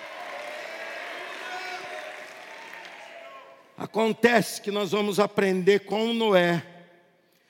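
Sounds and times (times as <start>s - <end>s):
crowd clapping: 0.0s - 3.7s
speech: 3.8s - 6.7s.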